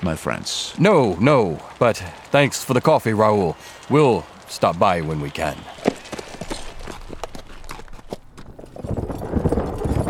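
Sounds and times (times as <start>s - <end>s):
speech: 0.0s - 5.8s
hooves of four huge black horses pulling a luxurious coach clip-clopping: 0.9s - 10.0s.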